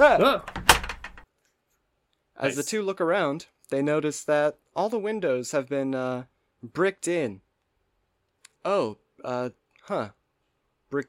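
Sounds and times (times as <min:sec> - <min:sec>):
speech: 0:00.0 - 0:00.5, 0:02.4 - 0:07.4, 0:08.6 - 0:10.2
door hinges creaking: 0:00.4 - 0:01.2
metallic lock clicks: 0:00.4 - 0:01.2.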